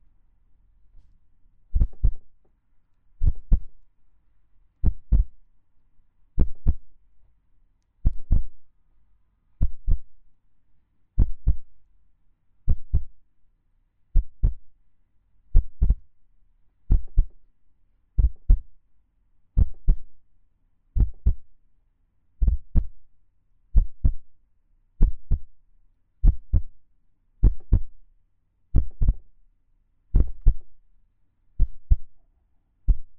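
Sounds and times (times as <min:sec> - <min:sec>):
fast human heartbeat heard against a person's chest on a train: 0:01.8 - 0:02.3, 0:03.2 - 0:03.8, 0:04.8 - 0:05.4, 0:06.4 - 0:06.9, 0:08.0 - 0:08.6, 0:09.6 - 0:10.1, 0:11.2 - 0:11.7, 0:12.7 - 0:13.2, 0:14.2 - 0:14.7, 0:15.6 - 0:16.1, 0:16.9 - 0:17.4, 0:18.2 - 0:18.7, 0:19.6 - 0:20.1, 0:21.0 - 0:21.5, 0:22.4 - 0:23.0, 0:23.8 - 0:24.3, 0:25.0 - 0:25.5, 0:26.2 - 0:26.8, 0:27.4 - 0:28.0, 0:28.8 - 0:29.3, 0:30.2 - 0:30.8, 0:31.6 - 0:32.1, 0:32.9 - 0:33.1.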